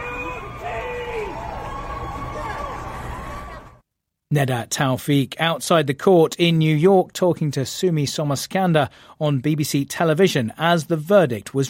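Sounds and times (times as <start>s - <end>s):
individual shouts: 0.0s - 3.6s
large outdoor crowd outside a New York court roaring and cheering at a guilty verdict: 0.0s - 3.8s
speech: 4.3s - 11.6s.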